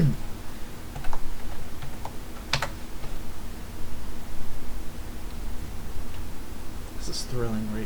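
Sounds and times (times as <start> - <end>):
steady hiss: 0.0 - 7.8
typing a search on a computer keyboard: 0.9 - 2.8
speech: 7.1 - 7.8.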